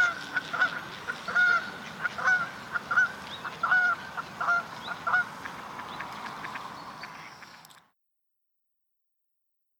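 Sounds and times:
Canada goose honking: 0.0s - 7.6s
constant hissing: 0.0s - 7.9s.

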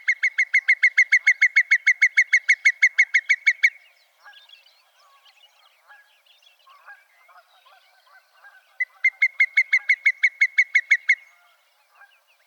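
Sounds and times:
whimbrel calling: 0.0s - 6.1s, 7.6s - 12.4s.

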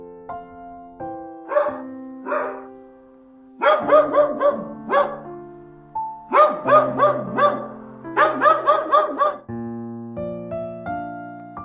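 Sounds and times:
dog barking: 1.5s - 2.8s, 3.6s - 5.3s, 6.3s - 9.5s.

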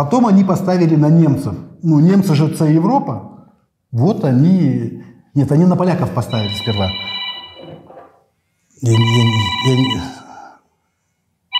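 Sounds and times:
speech: 0.0s - 3.3s, 3.9s - 7.2s, 8.8s - 10.2s
new mobile phone melodic electronic ringtone: 6.3s - 7.9s, 8.8s - 10.3s.

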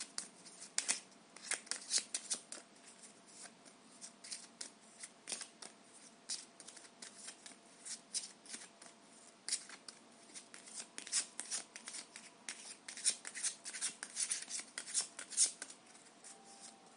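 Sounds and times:
tarot cards being shuffled: 0.0s - 8.9s, 9.5s - 16.8s.

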